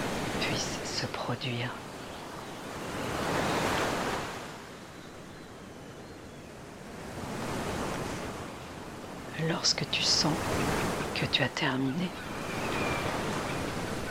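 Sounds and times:
ocean waves washing in and pulling back: 0.0 - 4.9, 6.7 - 14.0
speech: 0.4 - 1.8, 9.4 - 12.3.

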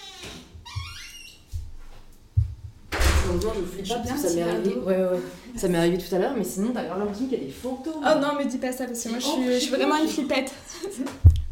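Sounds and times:
door creaking open on its own: 0.0 - 2.0, 2.9 - 3.7
door thudding shut: 2.4 - 3.6
speech: 3.3 - 11.3.

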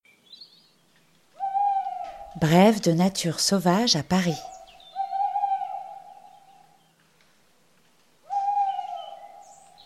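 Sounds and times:
tawny owl hooting in Paris: 1.4 - 2.8, 4.1 - 6.8, 8.2 - 9.8
speech: 2.4 - 4.5.

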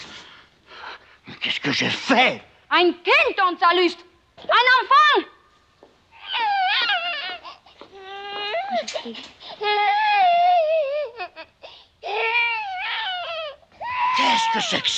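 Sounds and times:
speech: 1.4 - 5.3, 8.7 - 10.0, 14.3 - 14.9
baby crying in loud wailing bursts: 6.2 - 14.9.

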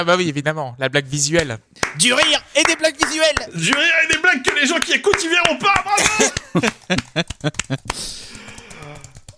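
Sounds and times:
speech: 0.0 - 9.0
laughter: 3.5 - 8.7
computer keyboard typing: 6.4 - 9.3.

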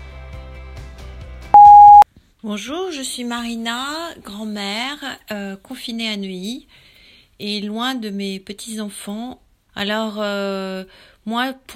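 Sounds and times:
single loud electronic beep before caller's message: 1.6 - 2.0
speech: 2.4 - 11.7.

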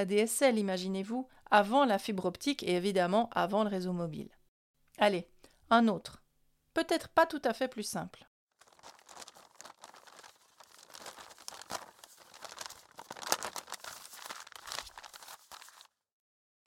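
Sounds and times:
speech: 0.0 - 4.4, 5.0 - 6.2, 6.8 - 9.0
large paper road map crinkling as it is unfolded and shaken open: 8.6 - 16.0.

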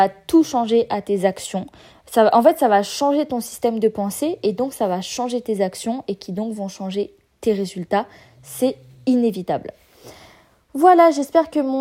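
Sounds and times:
speech: 0.0 - 10.2, 10.8 - 11.7
dog snoring: 7.9 - 9.8.

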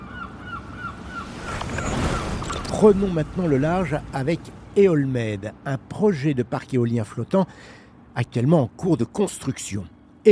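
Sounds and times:
gulls calling: 0.0 - 5.3
wind: 0.0 - 10.2
surf: 0.8 - 4.6
speech: 2.8 - 10.2.

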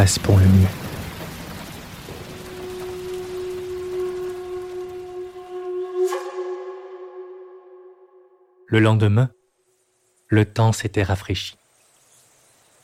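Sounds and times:
speech: 0.0 - 0.8, 8.7 - 9.4, 10.3 - 11.6
steady rain in a cyclone storm: 0.0 - 5.9, 8.8 - 12.8
droning howling cyclone wind: 0.7 - 8.4.

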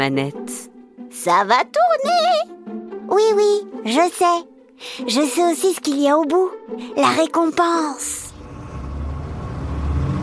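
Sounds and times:
speech: 0.0 - 2.5, 3.1 - 8.2
car engine droning while driving uphill on winding mountain roads: 8.3 - 10.2.

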